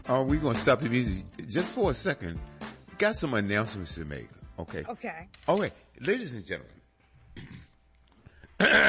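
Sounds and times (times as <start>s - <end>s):
speech: 0.1s - 6.8s
person clearing throat: 7.3s - 7.8s, 8.6s - 8.8s.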